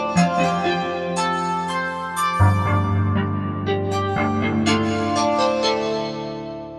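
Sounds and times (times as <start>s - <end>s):
Korg MSC-14S synthesizer sound effects: 0.2s - 6.2s.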